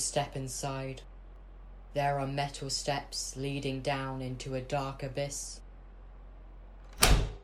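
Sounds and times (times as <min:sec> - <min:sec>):
speech: 0:00.0 - 0:01.1, 0:02.0 - 0:05.6
heavy warehouse door swinging shut with a thud: 0:06.9 - 0:07.4.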